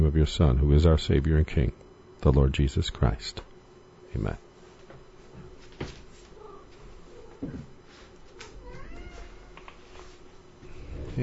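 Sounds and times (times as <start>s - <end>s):
speech: 0.0s - 3.5s, 4.1s - 4.4s, 7.4s - 7.7s
low room noise: 0.0s - 11.2s
cat meowing softly: 8.5s - 9.6s.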